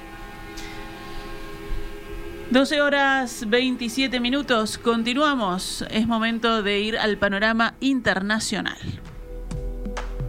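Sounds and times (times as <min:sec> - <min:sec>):
high squeal: 0:00.0 - 0:05.9
bus horns blaring in a chord during a protest: 0:00.0 - 0:09.0
speech: 0:02.5 - 0:09.0.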